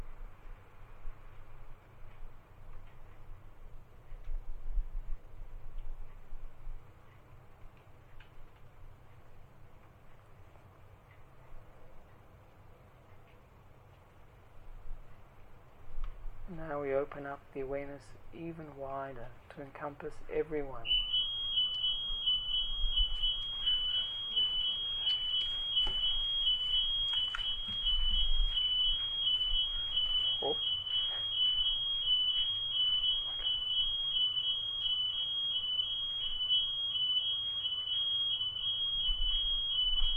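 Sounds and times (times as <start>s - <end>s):
low hum: 0.0s - 40.1s
speech: 16.5s - 21.1s
smoke alarm beeping: 20.4s - 40.1s.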